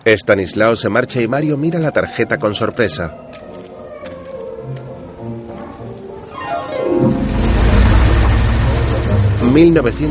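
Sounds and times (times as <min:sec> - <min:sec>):
speech: 0:00.0 - 0:03.6, 0:09.5 - 0:10.0
car engine rumble arriving at a film studio lot in Los Angeles: 0:07.2 - 0:10.0.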